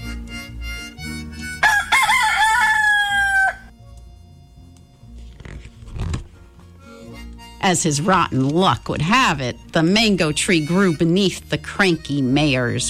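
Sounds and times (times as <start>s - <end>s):
rooster crowing: 1.6s - 3.7s
speech: 7.7s - 12.8s.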